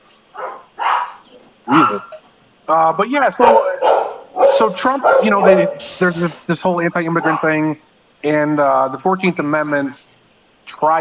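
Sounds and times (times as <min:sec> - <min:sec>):
pit bull barking: 0:00.3 - 0:02.2, 0:03.4 - 0:06.4, 0:07.0 - 0:07.6
speech: 0:02.7 - 0:03.7, 0:04.6 - 0:10.1, 0:10.7 - 0:10.9.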